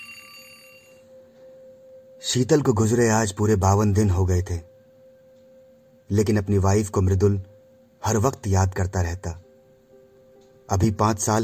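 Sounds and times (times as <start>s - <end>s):
alarm clock ringing with a steady electronic tone: 0.0s - 4.6s
speech: 2.2s - 4.7s, 6.1s - 9.4s, 10.7s - 11.4s.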